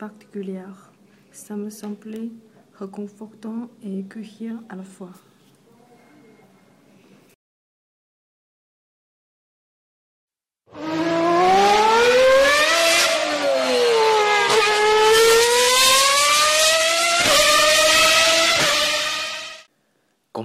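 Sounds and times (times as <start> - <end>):
speech: 0.0 - 5.3
car engine revving: 10.7 - 19.7.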